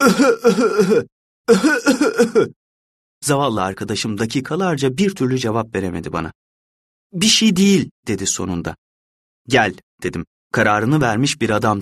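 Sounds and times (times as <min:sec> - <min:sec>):
person acting out a coughing fit: 0:00.0 - 0:02.5
speech: 0:00.0 - 0:02.5, 0:03.2 - 0:06.4, 0:07.1 - 0:08.8, 0:09.4 - 0:11.8.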